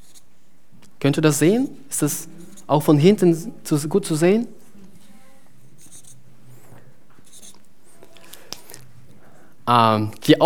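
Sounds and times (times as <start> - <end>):
speech: 1.0 - 4.6, 9.7 - 10.4
pen scratching and tapping on paper drawing dots: 5.8 - 7.7.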